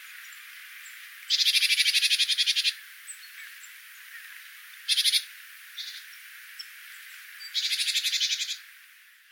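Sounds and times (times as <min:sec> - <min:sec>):
great tit (Parus major) buzzy churring calls: 0:01.3 - 0:02.8, 0:07.4 - 0:08.6.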